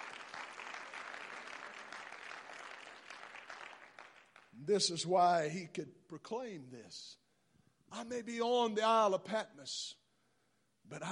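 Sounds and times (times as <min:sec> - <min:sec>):
church audience clapping hands in praise of God: 0:00.0 - 0:04.6
speech: 0:04.6 - 0:07.2, 0:07.9 - 0:10.0, 0:10.9 - 0:11.1.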